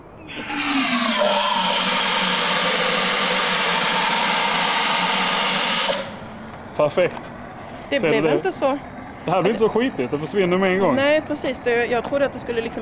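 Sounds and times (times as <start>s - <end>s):
carbon dioxide spraying from a squeezed handle outdoors over asphalt: 0.3s - 6.3s
speech: 6.8s - 7.3s, 7.9s - 12.8s.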